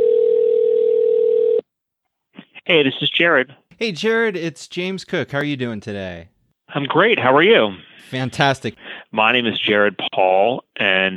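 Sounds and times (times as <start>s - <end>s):
telephone dial tone as a call is placed: 0.0s - 1.6s
speech: 2.7s - 11.1s.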